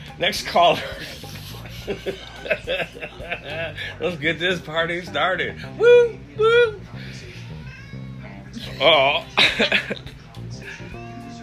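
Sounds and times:
speech: 0.2s - 7.0s, 8.8s - 10.1s
laughter: 0.7s - 4.0s, 8.6s - 10.4s
cat in heat yowling: 7.4s - 9.3s.

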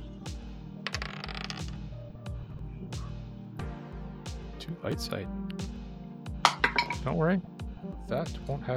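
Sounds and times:
low music: 0.0s - 8.7s
dice clattering across a hard surface: 0.9s - 1.8s, 6.5s - 7.0s
speech: 4.8s - 5.6s, 7.0s - 7.5s, 8.1s - 8.7s.

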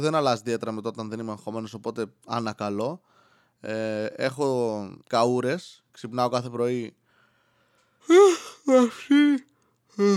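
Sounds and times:
speech: 0.0s - 7.0s, 8.0s - 10.1s
person yawning with groaning voice: 8.0s - 10.1s.

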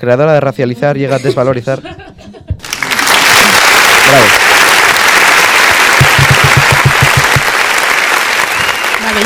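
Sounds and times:
speech: 0.0s - 2.1s, 4.1s - 4.5s
crowd applauding: 2.6s - 9.2s.

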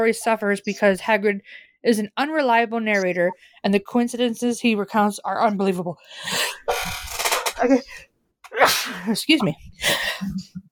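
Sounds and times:
speech: 0.0s - 7.0s, 7.6s - 10.6s
person sneezing: 8.5s - 9.2s.

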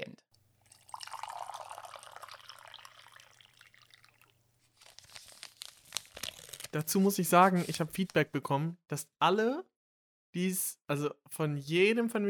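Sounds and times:
water poured for making tea: 0.6s - 4.4s
small crackling sounds: 2.8s - 6.9s
speech: 6.8s - 9.7s, 10.3s - 12.2s.

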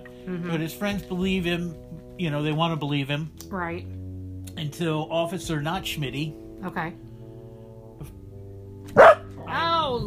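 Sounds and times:
speech: 0.2s - 4.0s, 4.6s - 7.0s
dog barking loudly: 8.9s - 9.3s.

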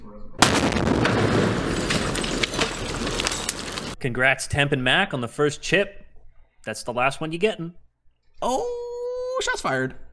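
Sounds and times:
video game grenade throw and explosion sound effect: 0.4s - 4.0s
speech: 4.0s - 6.0s, 6.6s - 8.8s, 9.4s - 10.0s.

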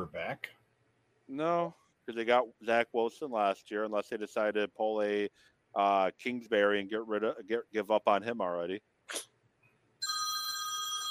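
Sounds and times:
speech: 0.0s - 0.6s, 1.3s - 9.3s
phone with bright steady electronic ring: 10.0s - 11.0s.

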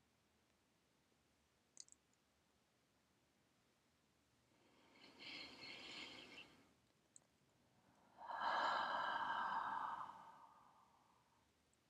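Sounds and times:
long slow breath during a guided breathing exercise: 4.6s - 6.6s, 8.0s - 11.4s.

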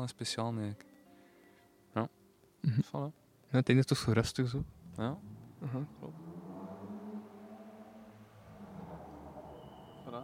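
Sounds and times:
speech: 0.0s - 0.9s, 2.0s - 6.4s
car driving past outside: 4.5s - 10.2s.

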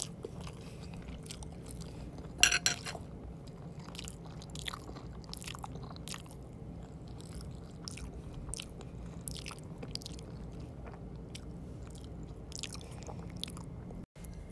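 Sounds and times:
someone chewing ramen noodles: 0.0s - 2.4s, 3.1s - 14.5s
low steady hum: 0.0s - 14.5s
breathing: 0.4s - 1.1s, 12.7s - 13.4s.

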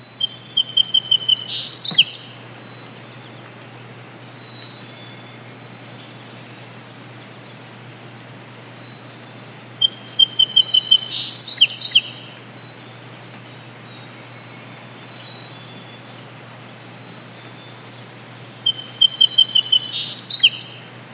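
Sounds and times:
quiet hiss: 0.0s - 21.1s
songbirds chirping in the morning: 0.0s - 21.1s.

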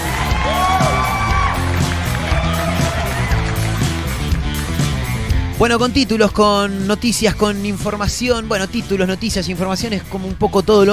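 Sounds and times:
crowd shouts and whoops: 0.0s - 3.9s
stadium crowd cheering and applauding for a football club anniversary: 0.0s - 5.3s
speech: 5.6s - 10.9s.

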